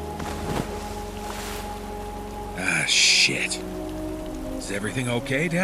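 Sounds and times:
something falling overboard from a fishing boat splashing into water: 0.1 - 1.9
speech: 2.9 - 3.9, 4.7 - 5.6.

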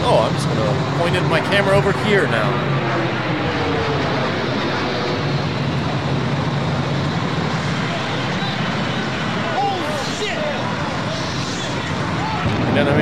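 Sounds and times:
airplane flying overhead: 0.0 - 12.9
speech: 0.1 - 3.0, 12.8 - 12.9.

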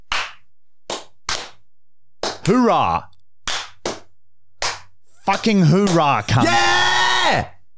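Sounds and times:
loud sharp hand claps: 0.0 - 2.6, 3.4 - 6.1
speech: 2.4 - 3.1, 5.3 - 7.6.

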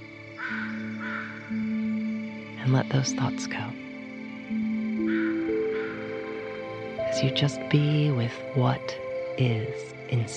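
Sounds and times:
harsh cawing bird calls in a forest: 0.2 - 2.6, 4.7 - 6.9
speech: 2.6 - 3.8, 7.2 - 10.3.

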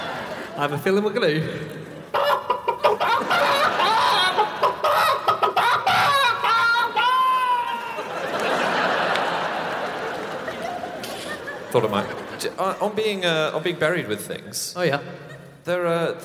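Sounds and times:
laughter: 0.0 - 0.8, 2.0 - 13.0
speech: 0.6 - 2.3, 11.8 - 16.2
chicken clucking and squawking: 2.2 - 6.6.

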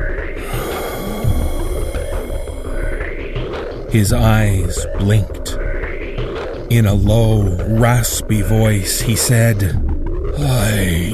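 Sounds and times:
steady low rumbling background: 0.0 - 6.0, 6.7 - 11.1
haunting breathy gasp: 0.4 - 2.9
speech: 3.9 - 5.4, 6.7 - 11.1.

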